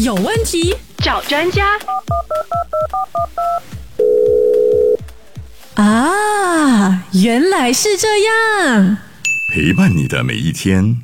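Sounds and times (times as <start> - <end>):
speech: 0.0 - 3.7, 5.8 - 11.0
two-tone telephone keypad dialing beeps: 1.8 - 5.0
long loud steady phone tone: 1.9 - 5.0.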